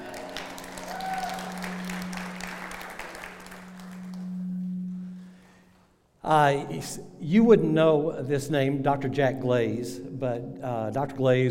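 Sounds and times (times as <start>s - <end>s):
thin scattered applause from a small group: 0.0s - 4.6s
low steady hum: 0.0s - 11.4s
speech: 6.3s - 11.4s.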